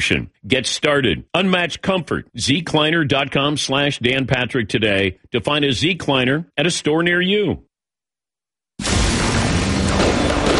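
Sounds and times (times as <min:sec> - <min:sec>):
speech: 0:00.0 - 0:07.7
firework blast rumbling and crackling: 0:08.8 - 0:10.5.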